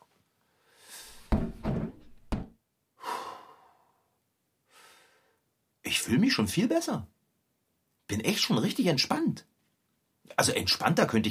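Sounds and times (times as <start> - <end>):
heavy breathing and exhaled sighs: 0.6 - 1.4, 3.0 - 4.1
house door thumping shut: 1.3 - 2.5
speech: 6.0 - 7.2, 8.1 - 9.5, 10.3 - 11.3.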